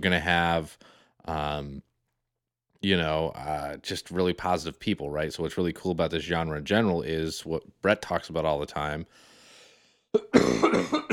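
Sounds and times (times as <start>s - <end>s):
speech: 0.0s - 1.9s, 2.8s - 9.3s, 10.1s - 11.0s
person coughing: 10.2s - 11.1s.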